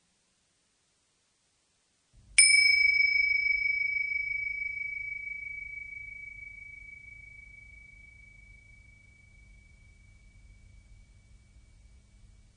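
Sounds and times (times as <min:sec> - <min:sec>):
faint low hum: 0:00.0 - 0:12.5
mindfulness bell struck with a bright metallic tone: 0:02.4 - 0:12.3.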